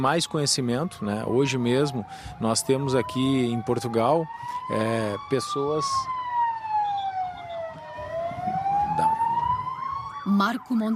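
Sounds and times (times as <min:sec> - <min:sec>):
speech: 0:00.0 - 0:06.2, 0:10.3 - 0:10.9
emergency vehicle siren wailing: 0:00.0 - 0:10.9
traffic rumbling: 0:00.0 - 0:10.9.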